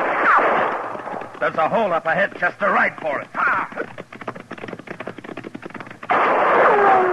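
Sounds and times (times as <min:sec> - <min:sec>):
gunshots fired at riders: 0:00.0 - 0:01.7, 0:06.1 - 0:07.1
speech: 0:01.4 - 0:04.0.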